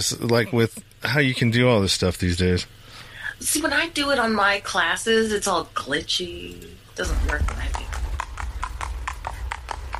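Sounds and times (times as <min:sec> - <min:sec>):
speech: 0:00.0 - 0:07.9
low rumbling background: 0:07.0 - 0:09.9
horse hooves clip-clopping: 0:07.1 - 0:09.9.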